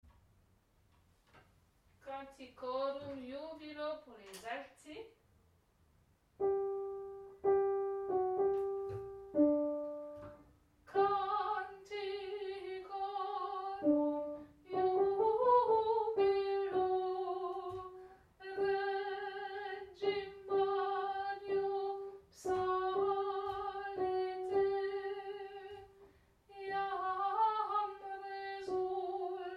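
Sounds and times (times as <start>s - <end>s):
alto singing: 6.4s - 25.9s, 26.5s - 29.5s.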